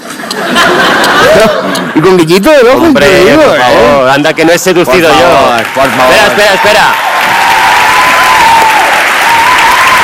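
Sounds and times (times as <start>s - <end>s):
laughter: 0.0s - 2.4s
speech: 1.3s - 7.1s
audience clapping: 5.0s - 10.0s.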